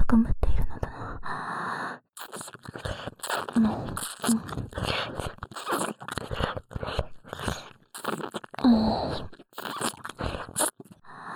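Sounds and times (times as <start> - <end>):
speech: 0.1 - 0.4, 3.6 - 5.3
ASMR ear licking with wet crunchy mouth sounds: 2.2 - 11.1.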